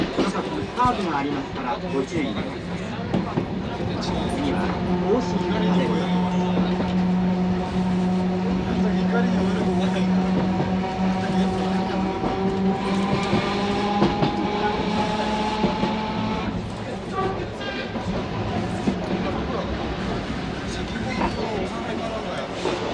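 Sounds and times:
voices murmuring faintly aboard a tram: 0.0s - 22.9s
tram motor hum aboard a tram: 2.4s - 22.9s.

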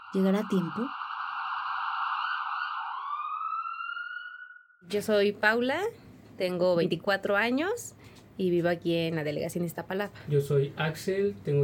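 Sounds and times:
ambulance siren wailing as the vehicle moves off: 0.0s - 4.8s
speech: 0.1s - 1.0s, 4.9s - 11.6s.

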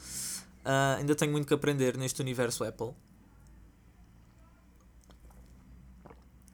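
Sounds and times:
speech: 0.6s - 3.1s
person drinking water and swallowing: 4.8s - 6.5s.

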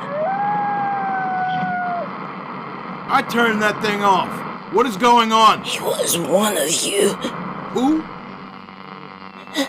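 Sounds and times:
coyote howling at night: 0.0s - 2.1s
speech: 3.1s - 8.1s.

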